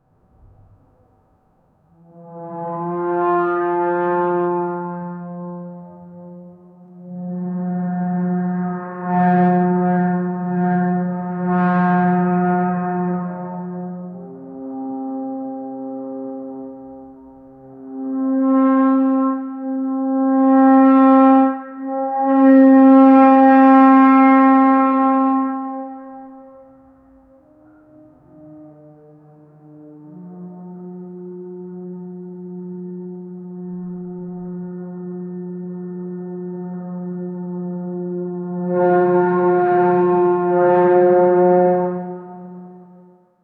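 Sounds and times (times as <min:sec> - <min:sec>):
French horn playing chase music: 0:01.8 - 0:43.4
trombone playing chase music: 0:02.0 - 0:26.7, 0:28.8 - 0:43.1.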